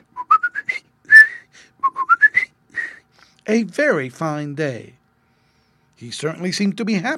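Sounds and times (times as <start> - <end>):
person whistling a birdlike tune imitating a bird's song: 0.2 - 3.0
speech: 3.5 - 5.0, 6.0 - 7.1.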